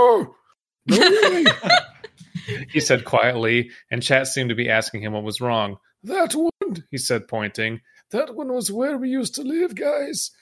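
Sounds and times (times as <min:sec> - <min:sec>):
speech: 0:00.0 - 0:01.9, 0:02.5 - 0:10.4
laughter: 0:00.9 - 0:03.2
person gasping: 0:02.2 - 0:03.0.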